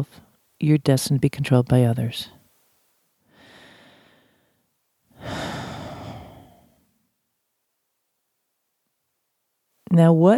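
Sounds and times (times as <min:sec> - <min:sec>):
speech: 0:00.0 - 0:02.4, 0:09.9 - 0:10.3
deliberate breath taken as a pause: 0:03.2 - 0:06.9.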